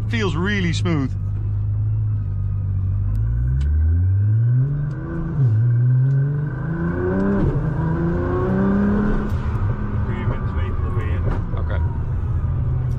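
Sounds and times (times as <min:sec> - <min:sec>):
speech: 0:00.1 - 0:01.2
tuned GTR turbo sports car engine accelerating: 0:00.6 - 0:12.9.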